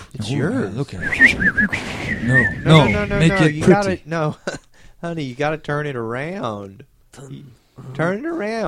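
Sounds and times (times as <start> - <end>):
speech: 0.2 - 8.6
penny whistle note: 1.0 - 3.8.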